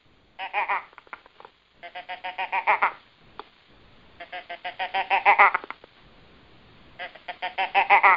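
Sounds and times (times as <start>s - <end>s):
imitated deer doe estrus stutter blat: 1.8s - 3.0s, 4.2s - 5.8s, 7.0s - 8.1s.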